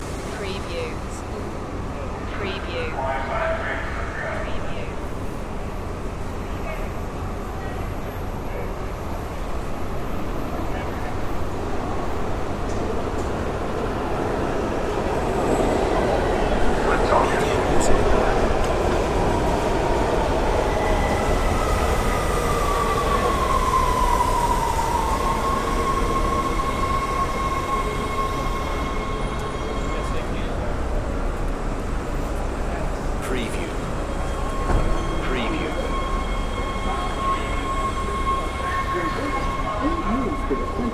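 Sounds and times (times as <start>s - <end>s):
subway train arriving: 0.0s - 40.9s.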